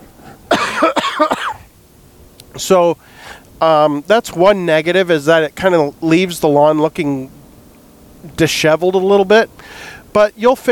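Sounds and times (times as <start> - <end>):
person coughing harshly: 0.5 - 1.6
speech: 0.8 - 1.5, 2.6 - 7.4, 8.3 - 10.7.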